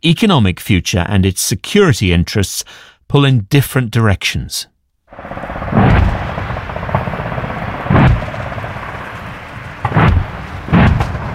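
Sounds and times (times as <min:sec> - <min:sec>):
speech: 0:00.0 - 0:06.2
heavy explosive booms from a military live-fire exercise near Townsville, Queensland, Australia: 0:05.1 - 0:11.3
steady low rumble: 0:05.1 - 0:11.3.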